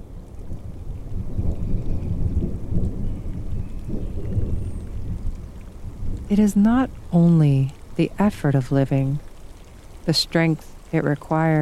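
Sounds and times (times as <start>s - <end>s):
steady rain: 0.0s - 11.6s
rolling thunder: 0.1s - 7.1s
speech: 6.3s - 9.2s, 10.1s - 11.6s.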